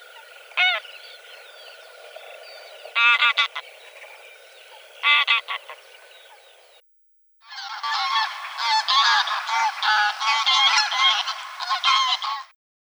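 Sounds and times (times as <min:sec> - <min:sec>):
greylag goose Anser anser honking: 0:00.6 - 0:00.9, 0:03.0 - 0:03.7, 0:05.0 - 0:05.9, 0:07.5 - 0:12.5.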